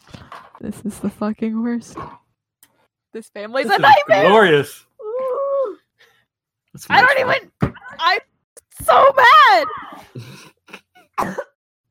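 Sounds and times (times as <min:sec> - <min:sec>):
speech: 0:00.6 - 0:02.2, 0:03.1 - 0:04.9, 0:06.8 - 0:10.5, 0:11.2 - 0:11.4
harsh coughs: 0:09.8 - 0:11.8.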